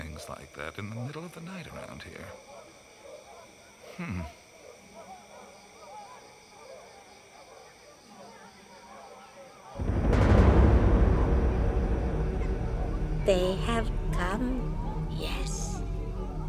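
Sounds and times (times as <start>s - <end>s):
speech: 0.2s - 2.5s, 4.0s - 4.4s, 13.3s - 15.5s
many voices chanting in a monkey chant performance at night: 9.8s - 16.4s.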